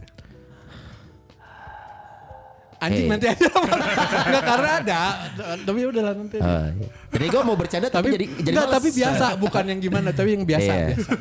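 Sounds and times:
short gasp-like intake of breath: 0:00.3 - 0:02.9
heavy nasal exhale into the microphone: 0:00.7 - 0:02.8
speech: 0:02.8 - 0:11.1
laughter: 0:03.0 - 0:06.3, 0:07.1 - 0:11.1.

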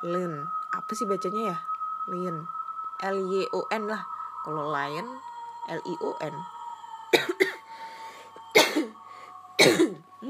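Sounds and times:
speech: 0:00.0 - 0:06.5
faint steady hum: 0:00.0 - 0:10.2
person coughing after getting caught in the rain: 0:07.1 - 0:07.6, 0:08.5 - 0:09.0, 0:09.6 - 0:10.0.

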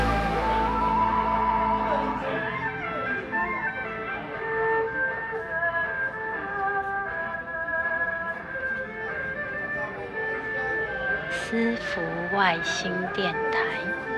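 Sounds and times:
festival theme song playing in a small temple hall: 0:00.0 - 0:04.4
people's voices murmuring in a temple alley: 0:00.0 - 0:14.1.

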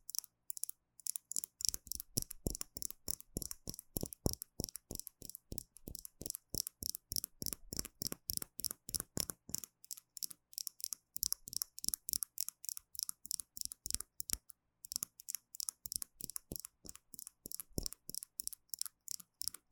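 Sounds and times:
tapping on gel nail supplies: 0:01.6 - 0:09.7, 0:15.9 - 0:18.2.

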